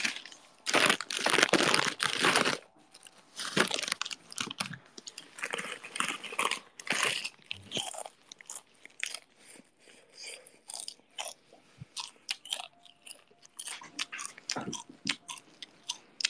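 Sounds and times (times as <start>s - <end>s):
potato chip bag crinkling: 0.0s - 8.4s
crisp crunching bites and chewing of potato chips: 0.0s - 16.2s.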